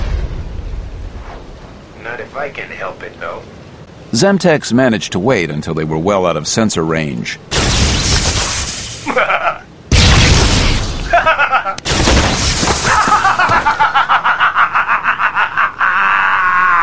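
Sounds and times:
loud explosion blasts with roaring tails: 0:00.0 - 0:02.4, 0:07.5 - 0:09.0, 0:09.9 - 0:13.5
speech: 0:02.0 - 0:07.8, 0:09.2 - 0:09.6
laughter: 0:11.1 - 0:11.8, 0:12.9 - 0:16.8.

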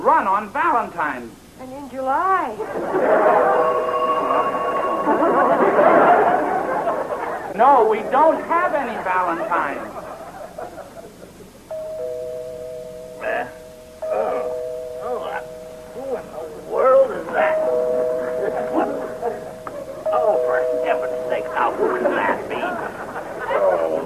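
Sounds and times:
speech: 0:00.0 - 0:06.4, 0:07.6 - 0:10.0
laughter: 0:02.6 - 0:11.7, 0:17.1 - 0:24.0
doorbell ringing: 0:02.9 - 0:07.2, 0:11.7 - 0:23.2.

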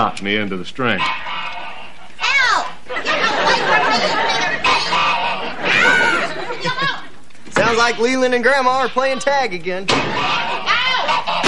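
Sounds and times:
speech: 0:00.0 - 0:01.5, 0:07.6 - 0:10.4
escaped goose honking: 0:00.9 - 0:06.5, 0:09.9 - 0:11.4
laughter: 0:02.9 - 0:07.9, 0:09.0 - 0:11.2.

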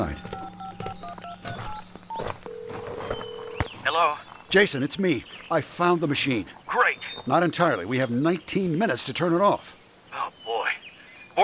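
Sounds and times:
cell phone keypad tones: 0:00.0 - 0:03.7
speech: 0:04.0 - 0:06.6, 0:07.2 - 0:09.8.

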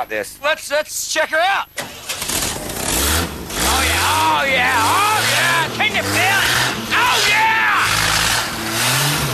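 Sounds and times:
speech: 0:00.0 - 0:02.2, 0:03.2 - 0:05.1
engine starting and revving: 0:01.8 - 0:06.9, 0:07.8 - 0:09.3.

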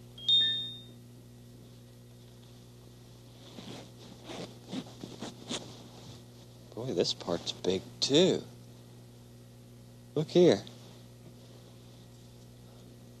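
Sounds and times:
low steady hum: 0:00.0 - 0:13.1
high chirp: 0:00.2 - 0:00.9
costume zipper being zipped up: 0:03.6 - 0:05.6
speech: 0:06.8 - 0:08.5, 0:10.2 - 0:10.7.

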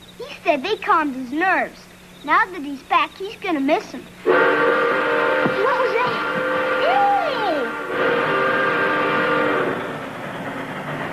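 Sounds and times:
train passing loudly at night: 0:00.0 - 0:11.1
speech: 0:00.2 - 0:04.8
train horn sweeping in pitch and blaring: 0:04.2 - 0:10.3.

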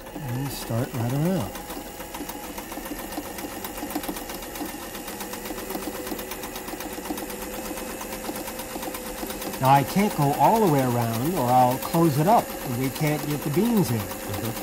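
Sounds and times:
sewing machine needle stitching through cloth: 0:00.0 - 0:14.6
speech: 0:00.2 - 0:01.6, 0:09.6 - 0:14.6.

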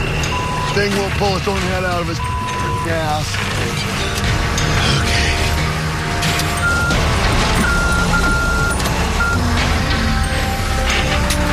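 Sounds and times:
truck reversing alarm beeping: 0:00.0 - 0:03.4, 0:06.5 - 0:11.2
heavy diesel truck engine rumbling: 0:00.0 - 0:11.5
speech: 0:00.8 - 0:05.3.

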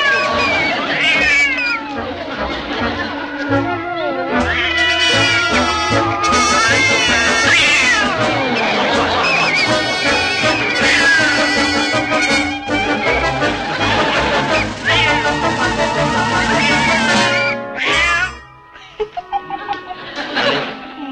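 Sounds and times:
cat meowing: 0:00.0 - 0:02.0, 0:03.9 - 0:08.6, 0:09.2 - 0:13.0, 0:14.0 - 0:18.6
laughter: 0:00.0 - 0:21.1.

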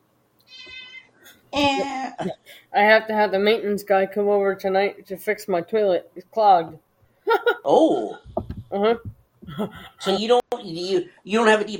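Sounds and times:
cat meowing with bright high-pitched tone: 0:00.5 - 0:01.1
speech: 0:01.6 - 0:11.7.

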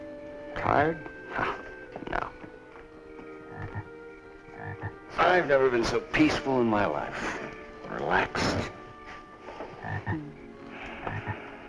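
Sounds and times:
speech: 0:00.6 - 0:02.2, 0:05.3 - 0:08.8
bullfrogs croaking at night: 0:01.4 - 0:05.1, 0:09.7 - 0:11.6.

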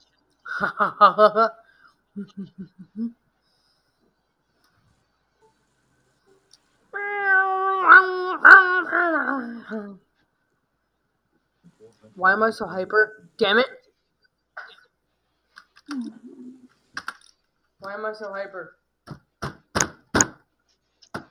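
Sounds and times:
speech: 0:00.5 - 0:01.6, 0:02.2 - 0:03.2, 0:08.9 - 0:10.0, 0:12.0 - 0:13.8, 0:15.9 - 0:16.3, 0:17.8 - 0:18.8
person imitating a cat meowing: 0:07.0 - 0:09.9.

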